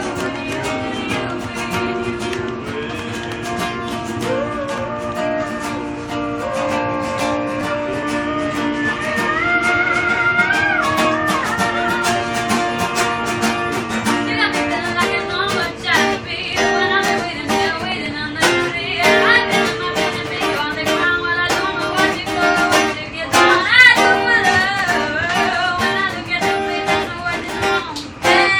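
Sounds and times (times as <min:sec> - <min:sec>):
musicians playing a wavering melody in a train carriage: 0:00.0 - 0:28.5.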